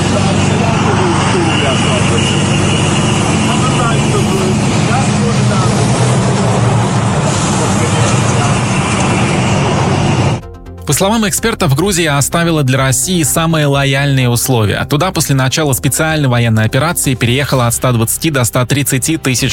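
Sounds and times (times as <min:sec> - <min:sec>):
faint indistinct voices: 0:00.0 - 0:10.4
idling car engines in a traffic jam before the Russian border crossing toward Georgia: 0:00.0 - 0:10.4
speech: 0:10.9 - 0:19.5.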